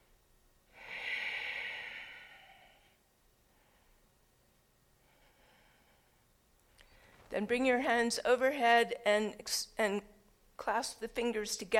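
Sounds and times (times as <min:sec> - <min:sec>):
person breathing during a standing yoga pose: 0:00.7 - 0:04.2, 0:05.0 - 0:07.3
speech: 0:07.4 - 0:11.7.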